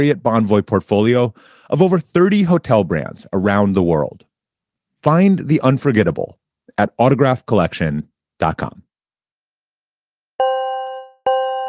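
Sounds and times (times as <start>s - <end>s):
speech: 0.0s - 4.3s, 5.0s - 8.8s
phone notification ding: 10.4s - 11.6s.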